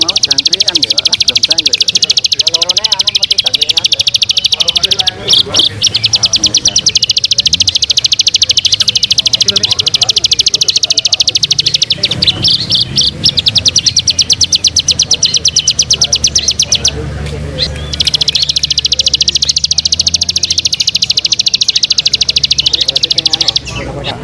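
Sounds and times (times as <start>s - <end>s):
Bar-winged prinia singing rapid ticking series of high notes: 0.0s - 24.2s.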